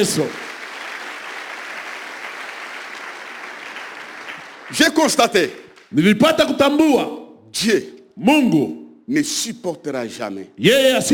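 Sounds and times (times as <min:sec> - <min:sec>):
speech: 0:00.0 - 0:00.4, 0:04.7 - 0:11.1
church congregation applauding: 0:00.0 - 0:05.9.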